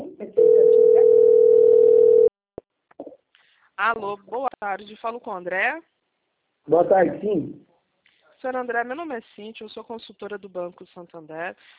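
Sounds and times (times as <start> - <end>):
telephone dial tone while placing a call: 0.4 - 2.3
speech: 3.8 - 6.0, 6.6 - 7.7, 8.4 - 11.7.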